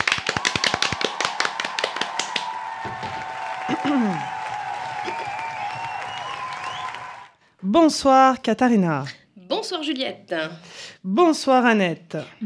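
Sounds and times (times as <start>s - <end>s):
audience applause for a game-show champion: 0.0s - 7.4s
speech: 3.9s - 4.3s, 7.6s - 12.4s.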